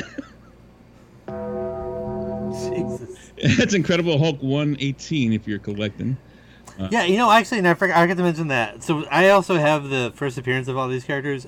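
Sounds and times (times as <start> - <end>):
laughter: 0.0 - 0.4, 3.0 - 4.1
bells ringing: 1.3 - 3.4
speech: 2.8 - 11.4.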